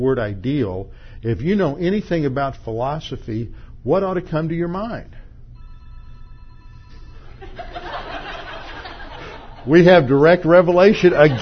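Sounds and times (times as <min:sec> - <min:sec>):
speech: 0:00.0 - 0:05.2, 0:09.6 - 0:11.4
phone ringing with a steady electronic tone: 0:05.5 - 0:08.8
laughter: 0:07.4 - 0:10.1, 0:10.8 - 0:11.4.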